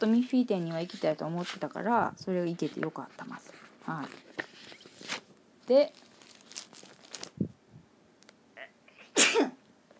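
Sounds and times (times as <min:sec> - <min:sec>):
speech: 0:00.0 - 0:04.5, 0:05.7 - 0:06.0, 0:09.4 - 0:09.6
rustling and crinkling: 0:00.0 - 0:07.6
person sneezing: 0:08.9 - 0:09.6.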